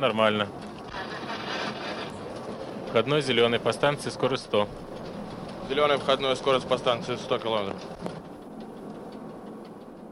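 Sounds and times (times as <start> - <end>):
speech: 0.0 - 0.7, 2.9 - 4.8, 5.7 - 8.1
daily passenger train hauled by a locomotive rumbling: 0.0 - 10.1
faint repeating ticks: 4.8 - 10.1.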